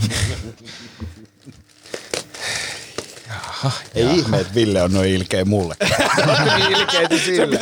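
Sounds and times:
laughter: 0:00.0 - 0:01.6, 0:05.6 - 0:07.6
speech: 0:00.1 - 0:01.1, 0:03.6 - 0:07.6
gift wrapping paper rustling and tearing as it is pulled open: 0:01.2 - 0:06.4.

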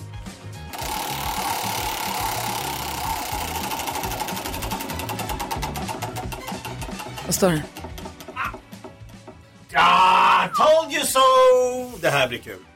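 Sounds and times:
prize wheel spinning with mechanical ticking from its pointer: 0:00.7 - 0:09.4
speech: 0:07.3 - 0:07.8, 0:10.6 - 0:12.7.

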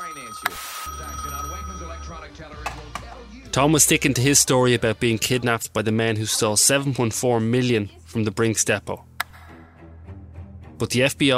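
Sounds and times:
telephone bell ringing unanswered: 0:00.0 - 0:02.6
speech: 0:02.1 - 0:09.1, 0:10.8 - 0:11.3.

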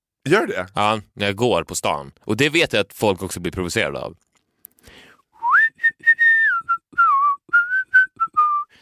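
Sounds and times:
speech: 0:00.2 - 0:05.0
person whistling a tune: 0:05.4 - 0:08.8.

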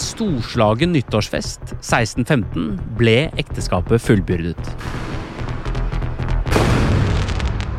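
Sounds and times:
speech: 0:00.2 - 0:05.0
fireworks banging and crackling: 0:06.4 - 0:07.7.

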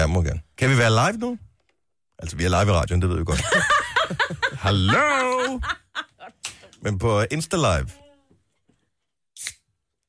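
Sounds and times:
speech: 0:00.0 - 0:01.5, 0:02.2 - 0:08.0
laughter: 0:03.3 - 0:06.4
bottle of soda water opening with fizzing hiss: 0:09.4 - 0:09.6.

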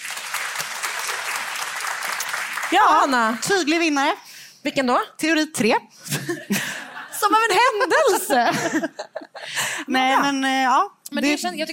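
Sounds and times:
audience applause: 0:00.0 - 0:03.4
speech: 0:02.7 - 0:09.2, 0:09.8 - 0:11.7.

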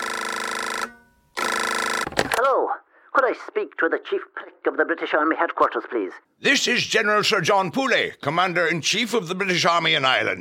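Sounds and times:
telephone ringing: 0:00.0 - 0:02.5
speech: 0:02.4 - 0:10.3.

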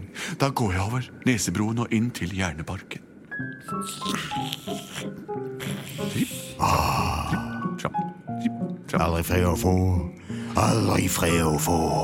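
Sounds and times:
speech: 0:00.4 - 0:03.0, 0:03.6 - 0:12.0
growly voice imitating a sleeping troll snoring: 0:03.7 - 0:07.6.

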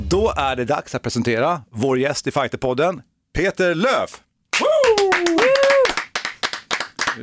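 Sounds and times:
speech: 0:00.2 - 0:04.3
drawn-out vocal whoop: 0:04.5 - 0:06.0
sharp hand claps: 0:04.5 - 0:07.2.

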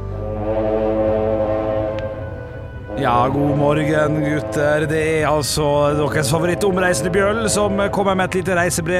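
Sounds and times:
deep cruise ship horn blast in the Caribbean: 0:00.1 - 0:08.9
speech: 0:03.0 - 0:08.9.

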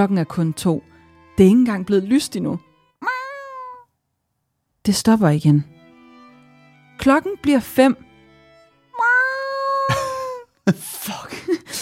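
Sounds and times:
speech: 0:00.0 - 0:02.7, 0:04.8 - 0:05.8, 0:07.0 - 0:08.1
hungry cat meowing loudly at night wanting to go outside: 0:03.0 - 0:03.9, 0:09.0 - 0:10.0.

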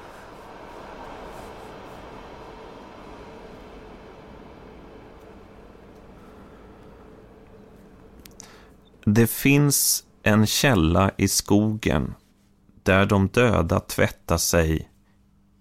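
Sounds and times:
train rumbling past outside: 0:00.0 - 0:09.0
speech: 0:09.0 - 0:12.2, 0:12.8 - 0:14.9.

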